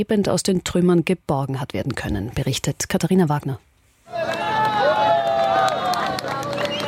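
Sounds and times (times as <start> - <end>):
speech: 0.0 - 4.2
large crowd cheering and shouting as rescued man carried out: 4.1 - 6.8.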